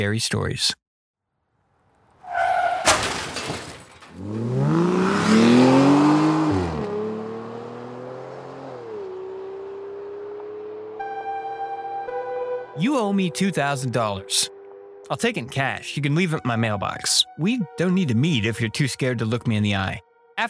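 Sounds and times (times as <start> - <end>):
speech: 0.0 - 0.8, 4.2 - 5.5, 12.8 - 20.4
car crash: 1.6 - 6.0
car engine revving hard and speeding away: 2.2 - 11.6
glass shattering: 2.7 - 4.8.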